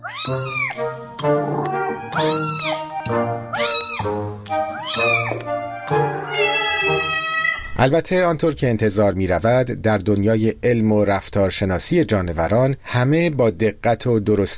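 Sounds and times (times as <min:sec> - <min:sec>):
cat meowing: 0:00.0 - 0:00.8, 0:01.5 - 0:02.9, 0:03.5 - 0:04.1, 0:04.7 - 0:07.8
speech: 0:00.1 - 0:01.4, 0:07.8 - 0:14.5.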